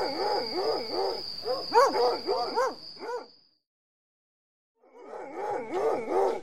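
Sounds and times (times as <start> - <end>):
several hounds baying and barking: 0.0 - 3.3, 4.9 - 6.4.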